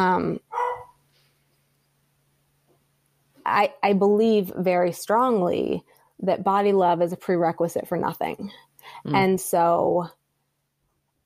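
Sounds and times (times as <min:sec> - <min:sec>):
speech: 0:00.0 - 0:00.6, 0:03.5 - 0:10.2
dog barking: 0:00.5 - 0:01.0.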